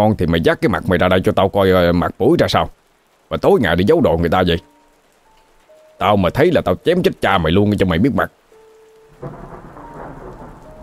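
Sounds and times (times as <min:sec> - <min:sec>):
speech: 0:00.0 - 0:04.7, 0:06.0 - 0:08.4, 0:09.2 - 0:09.5
heavy rain pouring down in a thunderstorm: 0:00.0 - 0:10.8
deep rumble of thunder: 0:09.1 - 0:10.8.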